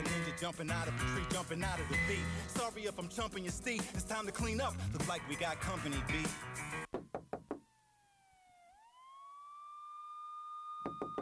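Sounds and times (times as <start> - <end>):
speech: 0.4 - 6.6
sharp loud knocking on a door: 6.9 - 7.6, 10.8 - 11.1
siren tone that dips and rises: 7.5 - 11.1.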